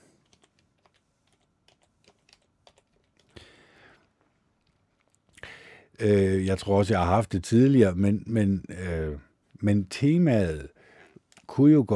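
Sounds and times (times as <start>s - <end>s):
fingers typing on a computer keyboard: 0.0s - 3.4s
speech: 6.0s - 8.8s, 9.6s - 10.8s, 11.5s - 11.9s.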